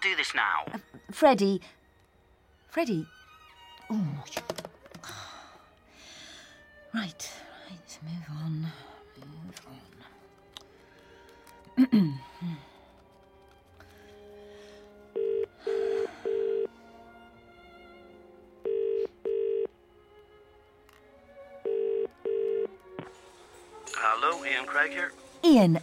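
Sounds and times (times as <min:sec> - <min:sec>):
speech: 0:00.0 - 0:01.8, 0:02.7 - 0:03.2, 0:03.9 - 0:04.6, 0:06.9 - 0:08.9, 0:11.8 - 0:12.6, 0:24.7 - 0:25.8
outgoing call ringback tone through a phone line: 0:15.2 - 0:16.7, 0:18.6 - 0:19.7, 0:21.6 - 0:22.8.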